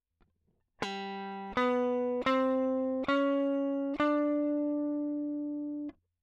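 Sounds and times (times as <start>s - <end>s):
rock and roll guitar solo line played on piano: 0.8s - 5.9s.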